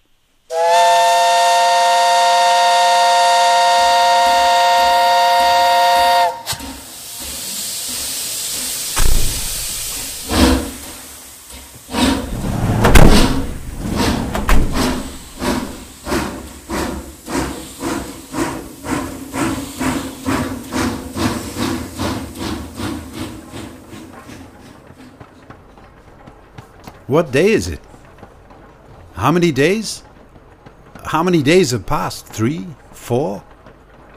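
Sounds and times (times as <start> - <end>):
steam locomotive whistle: 0.5 - 6.8
hissing steam from a locomotive: 0.5 - 25.0
steam locomotive rumbling and chuffing: 0.5 - 34.1
speech: 27.1 - 27.8, 29.2 - 30.1, 31.1 - 33.5.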